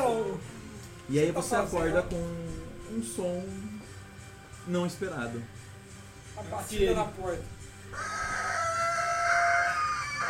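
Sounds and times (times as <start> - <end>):
speech: 1.1 - 3.7, 4.6 - 5.6, 6.4 - 8.2
roosters crowing at dawn near a hotel: 7.9 - 10.2.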